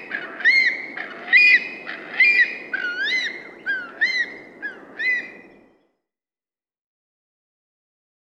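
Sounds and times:
Far Eastern curlew calling with clear arched whistled notes in Australia: 0.0 - 5.8.

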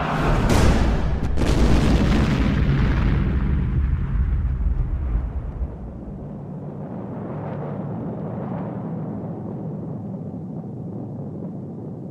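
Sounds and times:
grenade exploding under a small wooden table: 0.0 - 7.4
heavy rumbling roar after a grenade explosion: 0.0 - 9.2.

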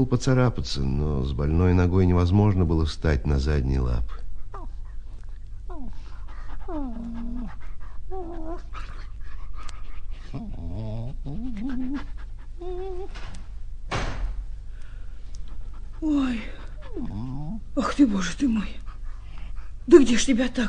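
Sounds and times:
speech: 0.0 - 4.2, 16.0 - 17.1, 17.8 - 18.8, 19.9 - 20.6
dog panting: 4.0 - 13.1, 15.4 - 20.2
dog whimpering: 4.5 - 4.9, 5.7 - 13.4, 16.0 - 17.9.

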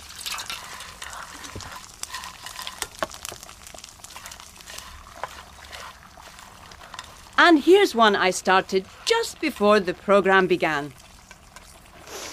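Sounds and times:
rice stirred in a pan while stock is added: 0.0 - 12.3
wet sizzle: 0.0 - 12.3
speech: 7.4 - 11.0.

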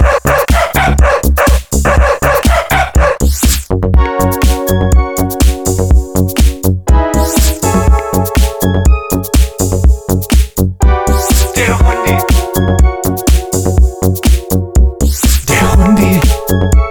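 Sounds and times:
voices imitating a dog's barking with wow wow shouts: 0.0 - 3.3
loud driving electronic beat: 0.0 - 16.8.

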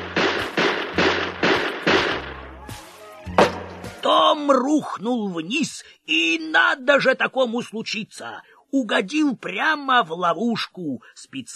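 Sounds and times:
pistol gunshots into a floor: 0.0 - 2.5
speech: 4.0 - 11.5.

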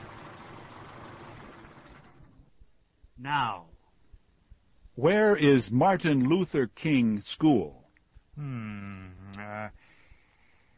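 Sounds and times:
car engine idling and switching off: 0.0 - 2.5
faint mechanical sound: 0.0 - 10.7
speech: 3.2 - 3.7, 5.0 - 7.8, 8.4 - 9.8.

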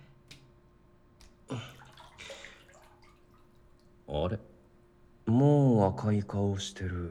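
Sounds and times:
water sloshing and splashing in a hotel bubble bath tub: 0.0 - 5.2
speech: 4.1 - 4.5, 5.9 - 7.0.

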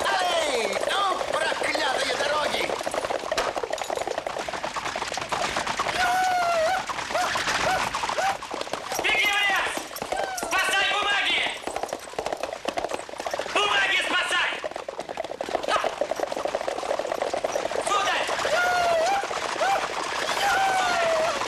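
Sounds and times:
horse hooves clip-clopping while pulling a carriage: 0.0 - 21.4
people shouting excitedly: 5.9 - 8.4, 10.1 - 10.8, 17.9 - 21.4.

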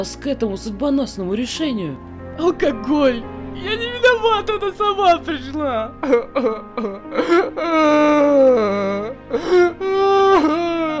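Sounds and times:
speech: 0.0 - 10.6
man sobbing and wailing: 3.6 - 10.9.

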